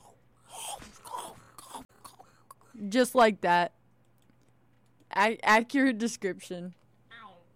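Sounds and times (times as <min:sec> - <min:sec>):
person munching and crunching food: 0:00.0 - 0:02.8
speech: 0:02.8 - 0:03.8, 0:05.2 - 0:06.8.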